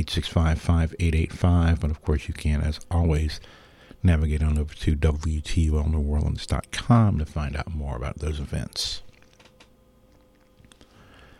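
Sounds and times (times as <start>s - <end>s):
speech: 0.0s - 9.1s
low steady hum: 0.0s - 11.3s
squeaky chair creaking as someone shifts in it: 9.1s - 9.7s
mechanical clicks: 9.1s - 9.8s.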